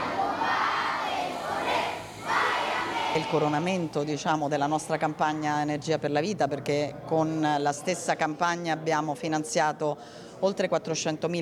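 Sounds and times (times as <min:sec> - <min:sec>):
large group of schoolchildren singing the national anthem: 0:00.0 - 0:03.4
speech: 0:03.2 - 0:11.3.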